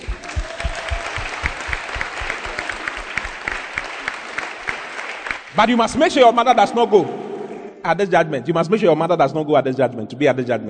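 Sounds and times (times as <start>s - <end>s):
room full of people clapping: 0.0s - 5.8s
speech: 5.6s - 10.6s.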